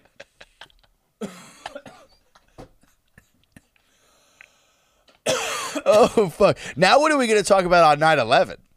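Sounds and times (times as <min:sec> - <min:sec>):
person coughing after taking a hit: 0:01.2 - 0:03.7, 0:05.2 - 0:06.3
strained breathy throat sounds: 0:03.2 - 0:05.2
speech: 0:06.0 - 0:08.6.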